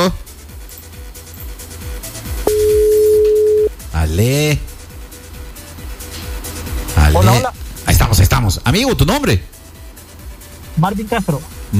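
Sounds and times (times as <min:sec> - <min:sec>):
rhythmic sound: 0:00.0 - 0:11.7
telephone dial tone: 0:02.5 - 0:03.7
speech: 0:04.2 - 0:04.7, 0:08.7 - 0:09.6, 0:10.8 - 0:11.7.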